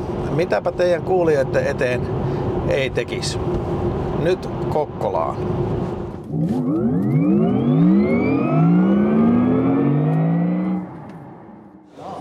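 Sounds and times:
road rumble: 0.0 - 12.2
speech: 0.4 - 9.1
car engine revving through gear changes in traffic: 3.4 - 12.2.

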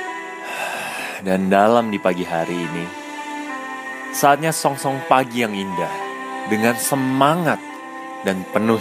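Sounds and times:
long deep breath drawn in close to the microphone: 0.4 - 1.2
speech: 1.2 - 3.0, 4.1 - 7.7, 8.2 - 8.8.

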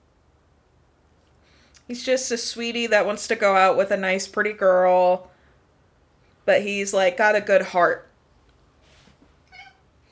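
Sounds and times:
soft hiss: 0.0 - 10.1
speech: 1.9 - 5.3, 6.4 - 8.1
cat meowing: 9.5 - 9.9.

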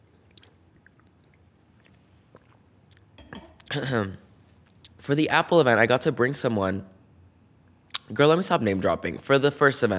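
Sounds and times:
person sipping a drink: 0.2 - 3.7
slurp and swallow: 0.3 - 3.1
speech: 3.7 - 4.2, 5.0 - 7.0, 8.1 - 9.9.

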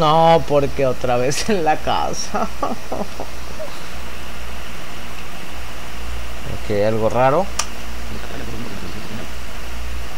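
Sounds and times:
speech: 0.0 - 3.4, 6.7 - 8.3
low electrical hum: 0.0 - 10.1
static hiss: 0.0 - 10.1
laughter: 2.2 - 3.8.

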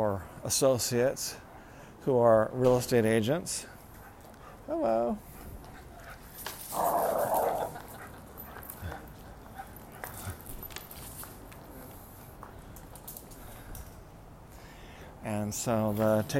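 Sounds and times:
speech: 0.0 - 1.4, 2.0 - 3.7, 4.7 - 5.3, 15.5 - 16.3
puppy growling at a large dog: 6.7 - 8.1.

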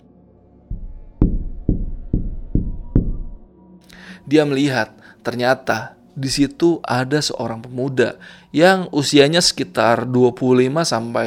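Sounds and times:
knuckles knocking on car door window glass: 1.2 - 3.2
speech: 4.2 - 11.2.

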